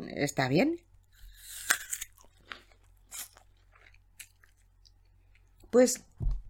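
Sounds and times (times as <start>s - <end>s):
speech: 0.2s - 0.9s, 5.7s - 6.4s
wet crunchy chewing of an apple: 1.0s - 5.6s
crisp bite into an apple: 1.2s - 4.9s.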